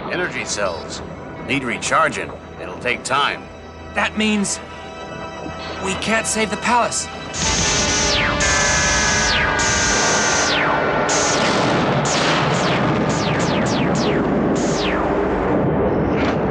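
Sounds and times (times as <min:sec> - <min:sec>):
speech: 0:00.1 - 0:04.7, 0:05.8 - 0:07.7
loud cannon blasts with sharp falling whine: 0:07.4 - 0:16.4.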